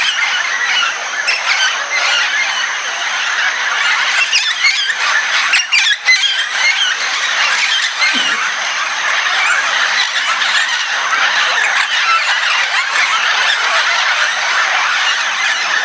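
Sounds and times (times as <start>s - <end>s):
Red-tailed amazon flock screeching and squawking in São Paulo state Brazil: 0.0s - 15.8s.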